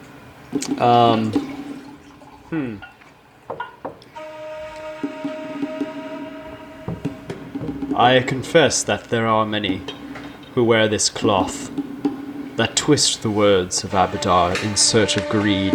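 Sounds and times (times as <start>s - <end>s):
speech: 0.5s - 1.5s, 2.5s - 2.9s, 7.9s - 10.0s, 10.6s - 11.9s, 12.6s - 15.7s
wine pouring into a glass: 0.6s - 3.1s, 8.2s - 14.8s.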